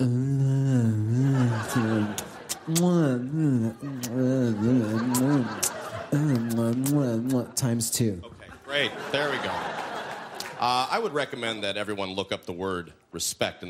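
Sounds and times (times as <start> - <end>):
laughter: 0.8 - 7.6, 8.4 - 11.3
voice mimicking making-out kissing sounds with humming, moaning and wet smacks: 2.2 - 3.0, 3.9 - 4.3, 5.1 - 7.4
speech: 7.8 - 9.8, 10.6 - 13.6.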